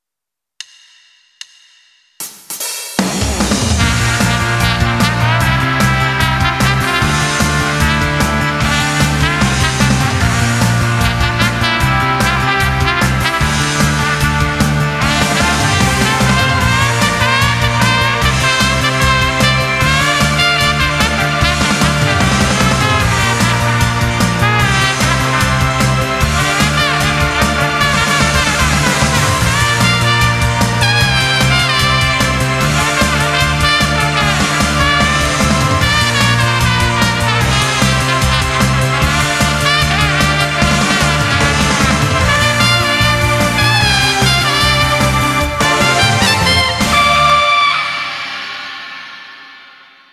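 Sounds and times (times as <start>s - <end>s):
slide trumpet: 3.6s - 50.1s.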